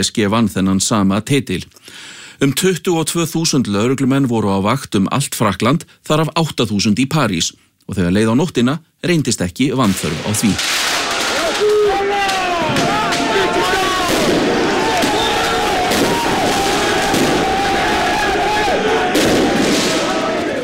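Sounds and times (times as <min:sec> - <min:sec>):
speech: 0:00.0 - 0:10.8
fireworks banging during night street celebrations: 0:09.8 - 0:20.6
dense crowd cheering during night street celebrations after a football title win: 0:10.6 - 0:20.6.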